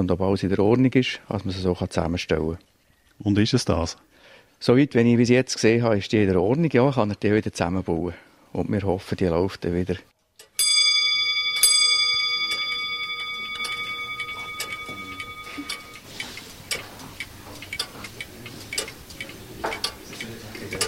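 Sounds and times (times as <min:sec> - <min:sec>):
speech: 0:00.0 - 0:10.1
grandfather and wall clocks ticking in a clockmaker's workshop: 0:10.4 - 0:20.8.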